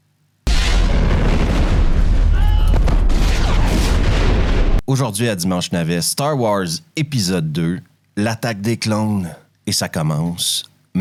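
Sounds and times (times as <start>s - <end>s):
explosion: 0.5s - 4.8s
speech: 4.9s - 10.9s.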